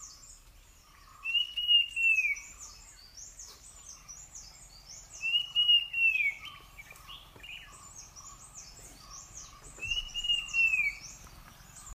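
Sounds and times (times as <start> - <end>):
puff-throated babbler giving a clear whistled call: 1.2 - 2.7, 5.2 - 7.7, 9.2 - 11.2
chorus of high chirping insects or birds: 1.2 - 11.9.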